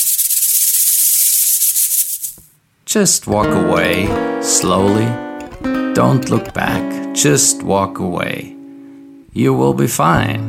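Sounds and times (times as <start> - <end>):
rattlesnake tail rattling: 0.0 - 2.5
speech: 2.9 - 8.6, 9.3 - 10.4.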